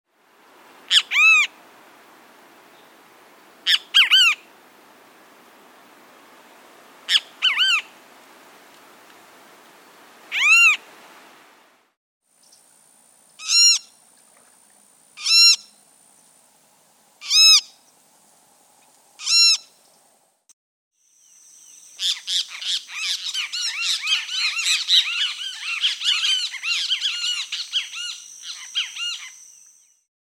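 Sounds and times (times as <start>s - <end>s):
Great Kiskadee calling: 0.9s - 1.6s, 3.6s - 4.5s, 7.1s - 7.9s, 10.3s - 10.8s, 13.4s - 16.3s, 17.2s - 17.9s, 19.2s - 20.0s, 22.0s - 30.0s.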